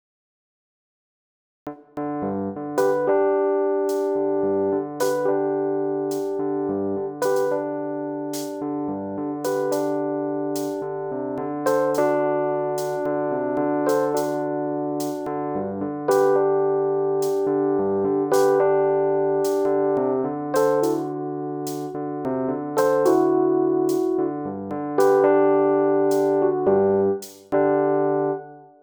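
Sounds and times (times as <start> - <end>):
mellow electric piano: 2.0 - 28.8.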